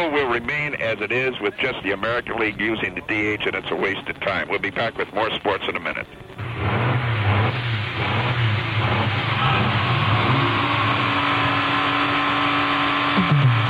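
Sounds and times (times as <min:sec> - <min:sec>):
speech: 0:00.0 - 0:06.8
experimental race car engines revving at high RPM: 0:06.4 - 0:13.6.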